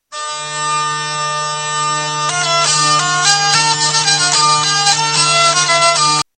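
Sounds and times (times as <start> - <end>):
hurdy-gurdy playing: 0.1 - 6.3.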